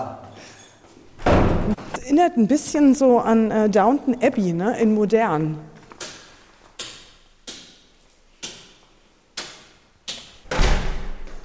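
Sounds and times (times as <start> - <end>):
heavy castle doors being shut and locked: 1.2 - 1.9, 10.4 - 11.4
speech: 1.7 - 5.7.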